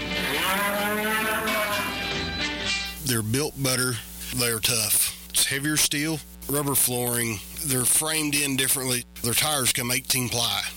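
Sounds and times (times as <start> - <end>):
cattle mooing on a ranch near Crawford, Oklahoma: 0.0 - 2.1
speech: 3.1 - 10.7.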